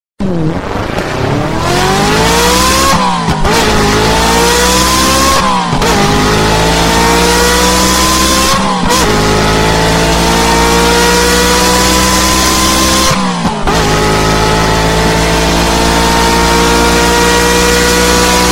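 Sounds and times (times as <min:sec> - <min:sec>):
Ferrari turbo engine: 0:00.2 - 0:18.5.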